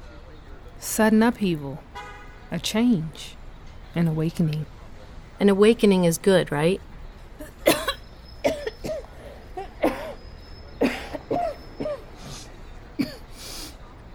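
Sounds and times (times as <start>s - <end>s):
speech: 0.9s - 1.9s, 2.5s - 4.8s, 5.4s - 6.9s
harsh rasping coughs: 7.4s - 10.2s, 10.8s - 12.3s, 13.0s - 13.4s.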